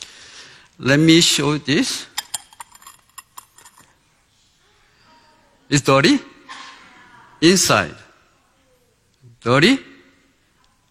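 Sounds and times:
speech: 0:00.8 - 0:02.1, 0:05.7 - 0:06.3, 0:07.4 - 0:08.0, 0:09.4 - 0:09.9
bowls clinking as they are handled: 0:02.1 - 0:04.0.

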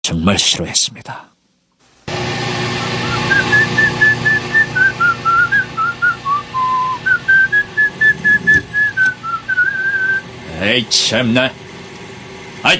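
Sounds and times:
speech: 0:00.1 - 0:01.3, 0:10.6 - 0:11.6
low rumbling engine: 0:02.1 - 0:12.7
person whistling a slow hymn melody: 0:02.8 - 0:10.2.

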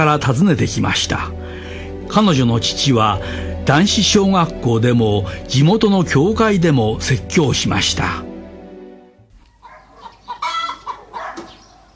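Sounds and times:
speech: 0:00.0 - 0:08.3
live chicken clucking in agitated bursts: 0:09.5 - 0:11.9.

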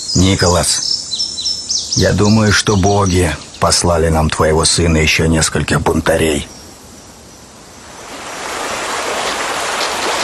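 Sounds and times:
speech: 0:00.1 - 0:01.0, 0:02.0 - 0:06.6
shallow river water flowing: 0:06.7 - 0:10.2.

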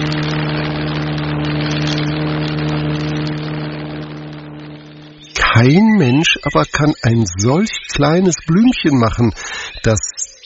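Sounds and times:
airplane engine droning: 0:00.0 - 0:08.2
speech: 0:05.6 - 0:10.0.

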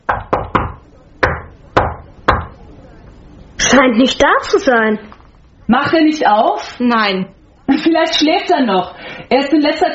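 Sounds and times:
knocking on a wooden door of an upstairs room in a flat: 0:00.1 - 0:02.6
speech: 0:03.7 - 0:05.1, 0:05.7 - 0:09.9.

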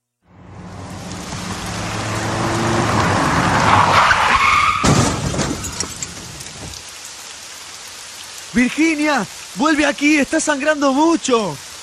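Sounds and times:
truck braking hard and skidding on a road in the rain: 0:00.3 - 0:06.3
truck crash: 0:02.3 - 0:06.4
speech: 0:08.6 - 0:11.7.

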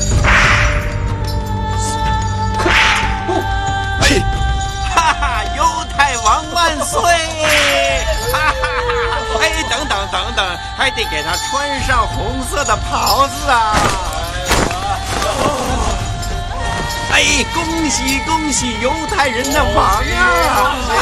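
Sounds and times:
low droning background: 0:00.0 - 0:04.8
whip lashes striking a body: 0:00.2 - 0:01.0, 0:02.6 - 0:03.4, 0:07.5 - 0:08.0
agitated voices: 0:01.8 - 0:21.0
laughter: 0:04.2 - 0:05.6, 0:06.4 - 0:10.6, 0:19.6 - 0:21.0
speech: 0:10.4 - 0:14.1, 0:17.2 - 0:21.0.

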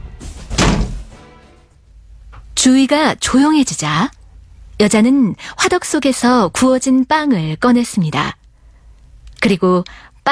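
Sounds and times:
door slamming shut: 0:00.2 - 0:01.2
speech: 0:02.6 - 0:04.2, 0:04.8 - 0:08.4, 0:09.4 - 0:10.3.

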